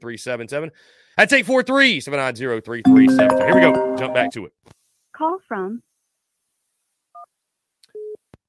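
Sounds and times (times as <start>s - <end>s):
speech: 0.0s - 5.9s
short two-pitch electronic phone-line beep: 2.9s - 4.4s.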